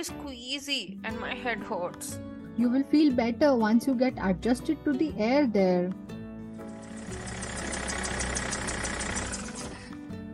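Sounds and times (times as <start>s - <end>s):
speech: 0.0s - 6.1s
bus diesel engine idling after stopping: 6.7s - 9.9s.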